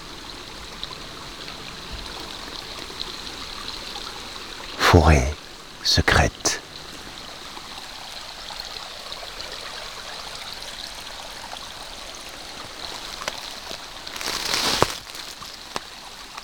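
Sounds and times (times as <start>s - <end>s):
water lapping and trickling in a small slow stream: 0.0s - 4.8s, 6.6s - 16.4s
speech: 5.0s - 6.6s
rustle: 12.4s - 16.4s.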